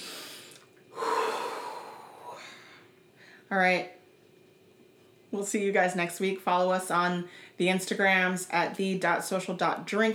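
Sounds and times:
deep cleansing breath taken before a prayer: 0.0s - 3.5s
speech: 3.5s - 4.0s, 5.3s - 10.1s.

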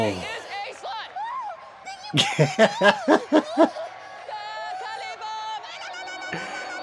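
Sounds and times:
speech: 2.1s - 3.8s
laughter: 2.1s - 4.0s, 6.4s - 6.8s
crowd booing: 2.2s - 4.5s.

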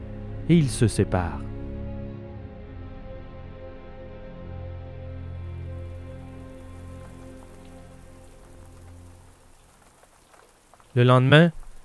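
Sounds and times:
speech: 0.5s - 1.5s, 11.0s - 11.6s
steady rain pattering against a window: 5.8s - 11.8s.

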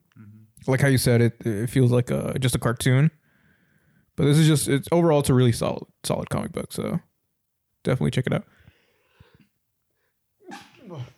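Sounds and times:
speech: 0.2s - 3.2s, 4.2s - 7.1s, 7.8s - 8.6s
quick sharp breaths in: 3.2s - 4.2s, 8.5s - 9.5s
loud sneeze: 10.4s - 11.1s.

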